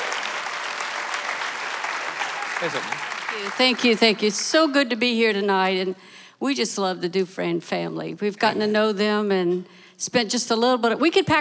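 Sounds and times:
audience applause: 0:00.0 - 0:04.5
speech: 0:02.6 - 0:11.3.

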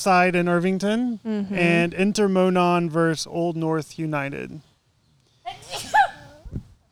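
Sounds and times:
speech: 0:00.0 - 0:04.7
sneeze: 0:05.5 - 0:06.6
soft low thump: 0:06.4 - 0:06.8.

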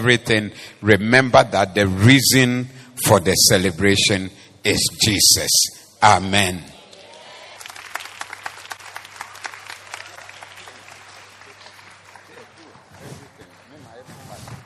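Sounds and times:
speech: 0:00.0 - 0:06.8
crowd clapping: 0:06.8 - 0:14.6.

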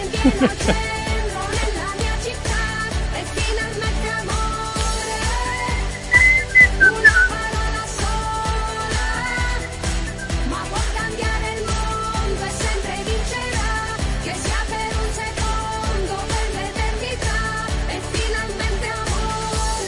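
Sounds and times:
laughter: 0:00.0 - 0:01.0
punchy dance-pop beat and backing music of a football league jingle: 0:00.0 - 0:19.8
whistled melody in a football league jingle: 0:05.8 - 0:07.5, 0:09.3 - 0:10.6.

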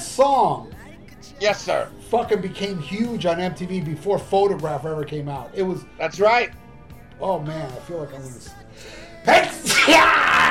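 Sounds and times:
speech: 0:00.2 - 0:06.6, 0:07.2 - 0:10.4
person sneezing: 0:09.6 - 0:10.2.

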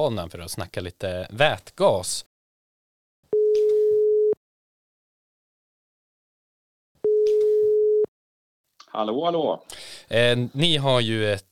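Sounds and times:
speech: 0:00.0 - 0:02.3, 0:08.9 - 0:11.5
telephone ringback tone: 0:03.4 - 0:04.4, 0:07.0 - 0:08.1.

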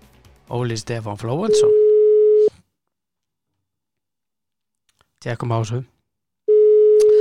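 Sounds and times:
speech: 0:00.5 - 0:01.8, 0:05.2 - 0:06.0
electronic telephone tone while calling someone: 0:01.5 - 0:02.6, 0:06.5 - 0:07.1.

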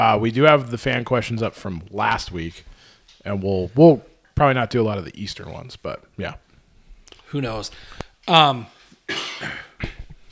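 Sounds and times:
speech: 0:00.0 - 0:06.4, 0:07.3 - 0:09.7
hard raspy cough: 0:09.1 - 0:10.0.

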